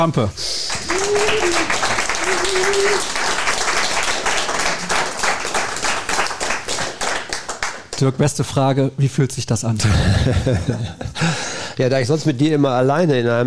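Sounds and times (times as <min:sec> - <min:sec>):
speech: 0:00.0 - 0:01.8, 0:08.0 - 0:13.4
whoops: 0:00.7 - 0:03.4
crowd applauding: 0:00.7 - 0:08.1
laughter: 0:09.8 - 0:11.4.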